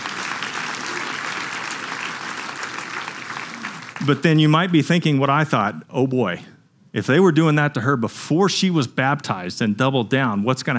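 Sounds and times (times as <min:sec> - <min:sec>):
audience clapping: 0:00.0 - 0:04.7
speech: 0:04.0 - 0:10.7.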